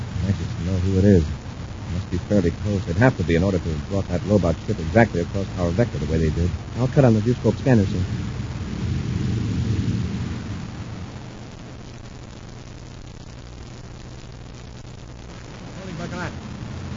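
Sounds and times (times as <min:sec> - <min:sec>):
steady low drone: 0:00.0 - 0:11.3
deep rumbling spaceship explosion sound effect: 0:00.0 - 0:11.6
speech: 0:00.3 - 0:08.5
faint whooshing sweep: 0:07.9 - 0:11.1.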